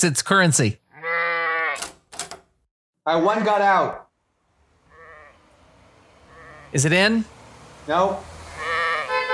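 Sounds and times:
speech: 0:00.0 - 0:00.8, 0:03.1 - 0:04.0, 0:06.7 - 0:08.3
sheep bleating: 0:00.9 - 0:01.8, 0:04.9 - 0:05.4, 0:06.3 - 0:06.8, 0:08.5 - 0:09.2.

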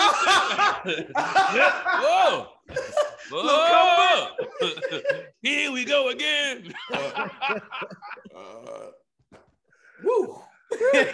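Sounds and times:
laughter: 0:00.0 - 0:08.6, 0:10.7 - 0:11.1
speech: 0:00.8 - 0:09.0, 0:10.0 - 0:11.1
loud drawn-out burp: 0:08.3 - 0:09.1.

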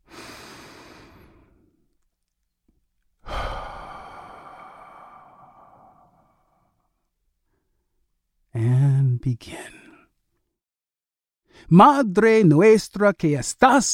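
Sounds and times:
person breathing deeply: 0:00.0 - 0:01.8, 0:03.2 - 0:06.9
speech: 0:08.6 - 0:09.8, 0:11.7 - 0:13.9.

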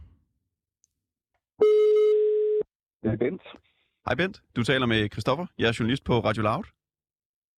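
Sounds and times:
electronic ringback tone of an outgoing phone call: 0:01.6 - 0:02.6
speech: 0:03.0 - 0:06.8.

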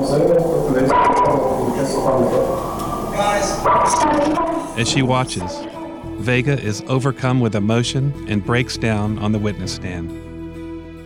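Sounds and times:
crowd commotion: 0:00.0 - 0:06.2
speech: 0:00.1 - 0:00.5, 0:01.8 - 0:10.3
dog barking: 0:03.6 - 0:04.8.

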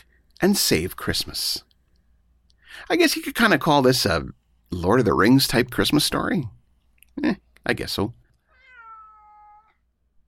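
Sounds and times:
speech: 0:00.0 - 0:01.7, 0:02.8 - 0:06.6, 0:07.2 - 0:08.2
drawn-out cat meow with falling pitch: 0:08.4 - 0:09.8.

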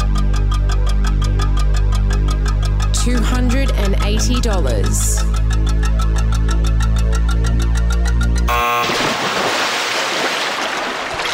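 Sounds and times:
steady rhythmic electronic drone: 0:00.0 - 0:09.6
speech: 0:03.1 - 0:05.7
loud crashing water splash: 0:08.7 - 0:11.3.

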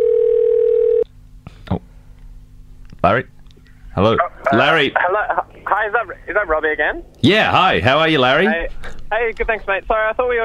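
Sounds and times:
loud steady telephone tone: 0:00.0 - 0:01.0
speech: 0:03.0 - 0:03.4, 0:04.0 - 0:10.4.

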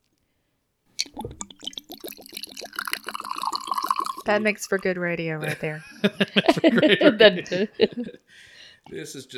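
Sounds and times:
tequila glugging into glasses: 0:01.0 - 0:04.9
speech: 0:04.3 - 0:09.3
laughter: 0:05.4 - 0:08.3.

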